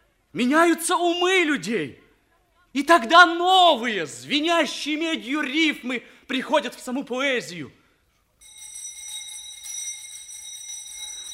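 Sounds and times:
speech: 0:00.3 - 0:02.0, 0:02.8 - 0:07.8
school bell ringing for the break: 0:08.4 - 0:11.3.

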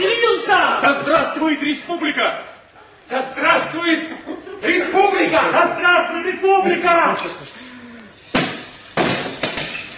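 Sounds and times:
speech: 0:00.8 - 0:07.6
laughter: 0:03.8 - 0:05.8
object shattering into shards: 0:08.2 - 0:09.9.

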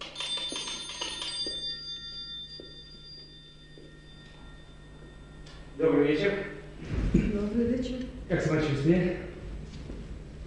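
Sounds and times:
telephone or doorbell ringing in a radio play: 0:00.0 - 0:06.8
speech: 0:05.8 - 0:09.2.

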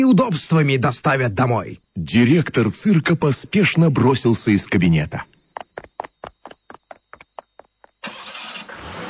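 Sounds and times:
speech: 0:00.0 - 0:05.4
car engine cranking and starting: 0:08.0 - 0:09.0.

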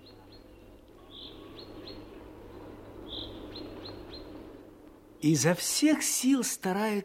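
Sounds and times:
chaffinch singing in a forest in April: 0:00.0 - 0:04.5
speech: 0:05.2 - 0:07.0.

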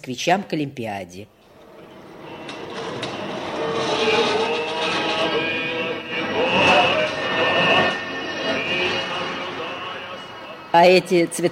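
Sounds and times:
speech: 0:00.0 - 0:01.4, 0:10.8 - 0:11.4
diesel locomotive hauling subway cars with engine and rolling wheels rumbling: 0:01.4 - 0:11.4
faint metallic squeals of a train: 0:01.4 - 0:11.4.

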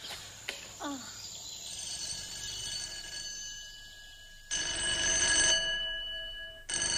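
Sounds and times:
old-fashioned telephone bell ringing: 0:01.7 - 0:06.9.

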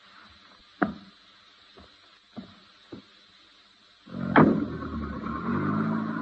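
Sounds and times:
car engine starting and running as the car pulls away: 0:04.1 - 0:06.2.

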